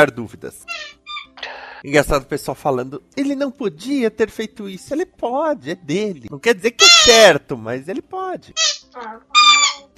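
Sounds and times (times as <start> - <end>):
speech: 0.0 - 1.0, 1.8 - 9.9
squeaky dog toy being squeezed: 0.6 - 1.4, 6.8 - 7.4, 8.6 - 9.9.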